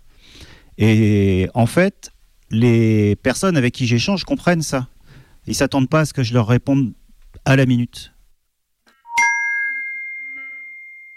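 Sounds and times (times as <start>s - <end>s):
speech: 0.8s - 8.2s
watch notification chime: 9.1s - 11.1s.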